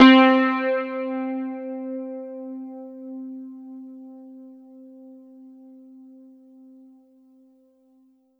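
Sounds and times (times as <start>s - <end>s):
Yamaha FS1r synthesizer note C4: 0.0s - 2.1s.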